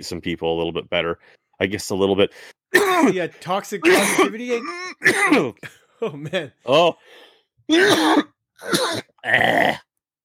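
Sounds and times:
speech: 0.0 - 9.8
person with a tickle in the throat clearing it: 2.8 - 3.1, 3.8 - 5.7, 7.7 - 9.8.

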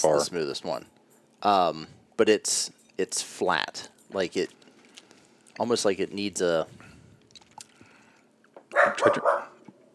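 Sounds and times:
speech: 0.0 - 4.6, 5.6 - 6.8, 8.9 - 9.5
dog barking at its own reflection in a window: 8.7 - 9.6.

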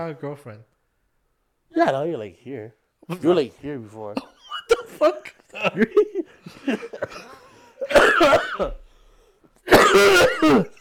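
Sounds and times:
speech: 0.0 - 0.7, 1.7 - 4.3, 5.0 - 8.8, 9.7 - 10.7
person coughing harshly: 4.1 - 6.0, 6.9 - 8.8, 9.6 - 10.7
laughter: 4.7 - 8.8.

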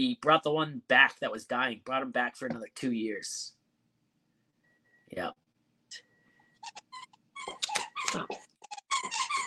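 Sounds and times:
speech: 0.0 - 3.6, 5.1 - 6.0, 7.4 - 8.5
dog whimpering: 6.6 - 9.4.

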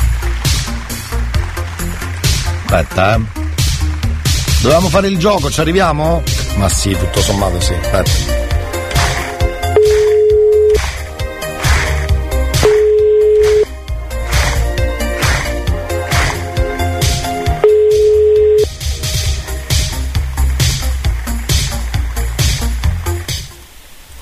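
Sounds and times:
loud rhythmic music: 0.0 - 23.7
speech: 2.7 - 3.4, 4.6 - 8.5
telephone ringing tone of a call placed to a relative: 9.8 - 10.8, 12.6 - 13.7, 17.6 - 18.7.

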